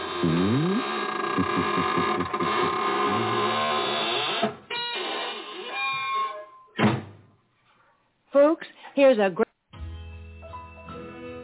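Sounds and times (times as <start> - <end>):
squeaking door creaking as it is closed: 0.0 - 7.1
speech: 1.4 - 2.9, 9.1 - 9.4
solid thump of door closing: 6.8 - 7.2.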